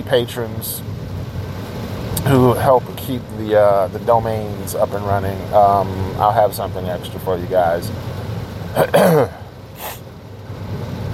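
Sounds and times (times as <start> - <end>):
speech: 0.1 - 0.9, 2.2 - 9.9
throat clearing: 8.8 - 10.0
breathy exhale: 9.3 - 10.0.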